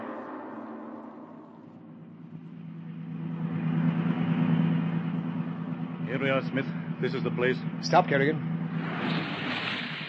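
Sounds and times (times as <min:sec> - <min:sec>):
car engine starting up and running as the car drives along: 0:02.2 - 0:10.0
speech: 0:06.2 - 0:09.2.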